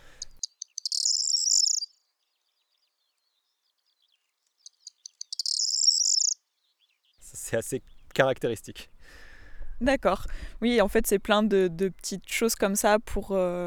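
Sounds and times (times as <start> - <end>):
corn bunting song with glassy trill: 5.4 - 6.4
speech: 7.5 - 9.2, 9.8 - 13.6.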